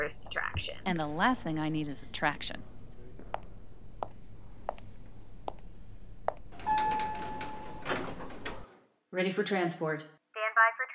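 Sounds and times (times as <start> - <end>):
speech: 0.0 - 2.7, 9.2 - 10.2
footsteps: 0.2 - 6.6
automatic bookstore door sliding open with a whoosh: 6.5 - 8.8.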